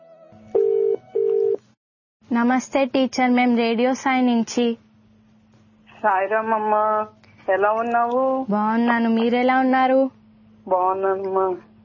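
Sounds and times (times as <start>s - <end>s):
phone ringing tone while calling a teacher: 0.5s - 1.6s
speech: 2.3s - 4.8s, 6.0s - 11.7s.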